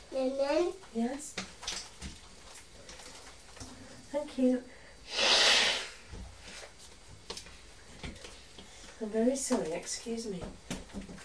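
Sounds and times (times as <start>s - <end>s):
speech: 0.2s - 1.5s, 4.2s - 5.2s, 9.0s - 10.6s
woman blowing her nose: 5.0s - 6.1s.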